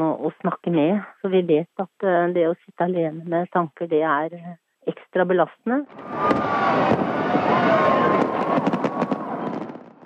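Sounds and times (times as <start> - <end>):
speech: 0.0 - 8.7
fireworks rumbling crackle: 5.9 - 10.0
fireworks pops and bangs: 6.0 - 10.0.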